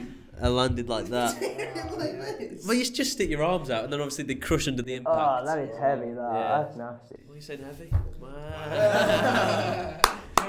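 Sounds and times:
speech: 0.4 - 10.0
laughter: 1.0 - 2.9, 8.6 - 10.4
hands clapping: 9.9 - 10.4.

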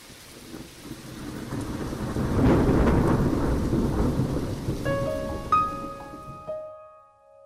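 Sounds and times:
heavy rain pouring: 0.0 - 6.6
loud deep rumble of thunder: 0.2 - 6.5.

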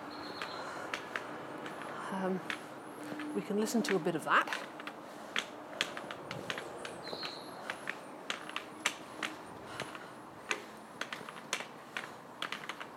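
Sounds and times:
bird chirp: 0.0 - 0.8, 6.6 - 7.7
footsteps walking along a railway station platform: 0.0 - 12.9
speech: 2.1 - 2.6, 3.3 - 4.7.

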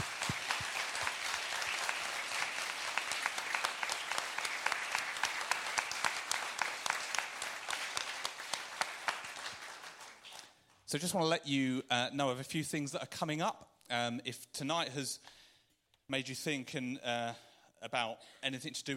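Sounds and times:
room full of people applauding: 0.0 - 10.8
speech: 10.9 - 15.4, 16.1 - 18.9.

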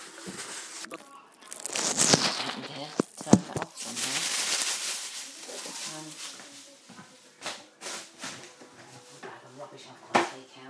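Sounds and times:
plastic bag crinkling on the floor: 0.0 - 7.2
faint voice: 0.8 - 10.6.

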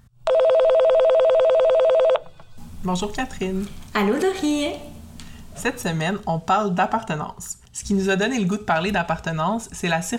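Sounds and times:
telephone ringing for an outgoing call: 0.2 - 2.6
speech: 2.8 - 4.9, 5.6 - 10.1.

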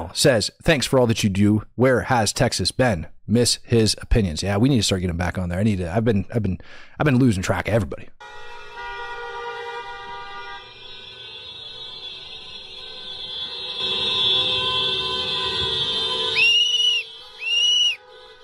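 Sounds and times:
speech: 0.1 - 8.6
personal safety whistle blasts: 13.3 - 18.0.

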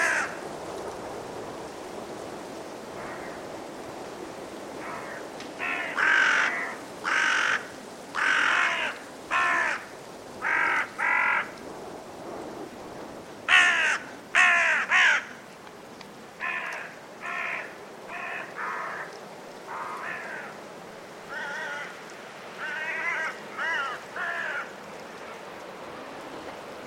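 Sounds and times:
group of carrion crows cawing in trees before roosting in winter at Woodchester Park, Gloucestershire: 0.0 - 0.4, 3.0 - 3.4, 4.8 - 11.6, 13.5 - 15.4, 16.4 - 20.6, 21.3 - 22.0, 22.6 - 24.8
blustery force 6 wind in winter at Woodchester Park, Gloucestershire: 0.0 - 26.8.

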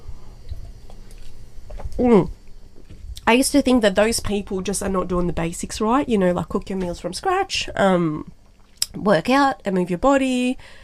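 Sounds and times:
person sipping water: 0.5 - 3.0
speech: 2.0 - 2.4, 3.3 - 10.8
voiced exhale: 10.6 - 10.8.

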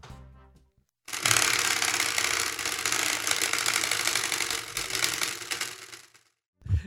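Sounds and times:
prize wheel with a sprinkler-head pointer spinning and clicking: 1.1 - 6.3.

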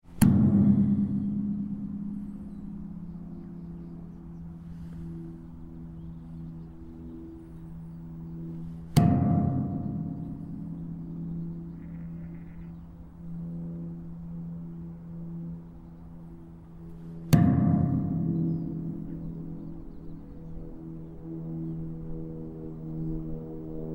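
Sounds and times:
large standing knife edge bronze figure sculpture bonging in Yorkshire: 0.0 - 7.6, 8.5 - 11.8, 16.9 - 20.2.

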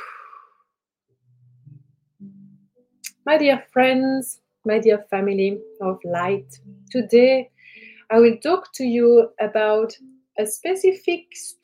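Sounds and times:
breathy exhale through an open mouth during a guided breathing exercise: 0.0 - 0.6
speech: 3.2 - 7.5, 8.1 - 11.6.

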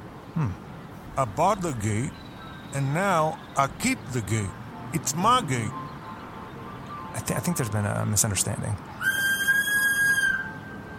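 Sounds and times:
speech: 0.4 - 0.6, 1.2 - 5.8, 7.2 - 9.2
high-pitched whistle: 9.0 - 10.9.

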